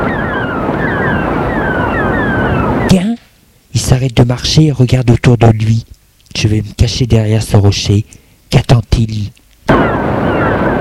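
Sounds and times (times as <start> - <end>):
strong gusty wind blowing over open ground near rocks: 0.0 - 3.0, 9.7 - 10.7
speech: 4.0 - 9.8.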